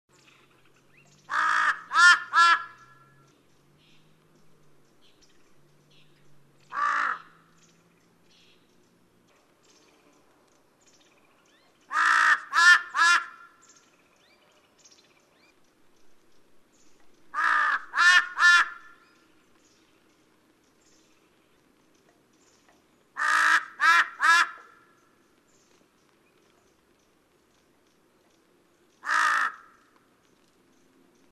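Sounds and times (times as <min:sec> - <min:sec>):
large-billed crow calling: 0:01.3 - 0:03.3, 0:06.7 - 0:07.5, 0:11.9 - 0:13.7, 0:17.3 - 0:19.1, 0:23.2 - 0:25.0, 0:29.0 - 0:30.0.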